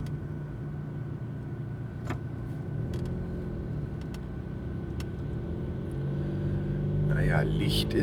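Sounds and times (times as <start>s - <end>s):
car engine and road rumble heard from the interior: 0.0s - 8.0s
speech: 7.3s - 8.0s.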